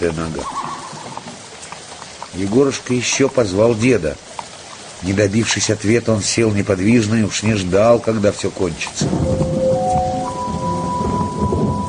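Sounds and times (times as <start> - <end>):
speech: 0.0 - 0.7, 2.4 - 4.3, 5.0 - 9.5
heavy rain in a thunderstorm: 0.0 - 11.8
low rolling rumble of thunder: 9.0 - 11.8
faint sustained tone: 9.3 - 11.8.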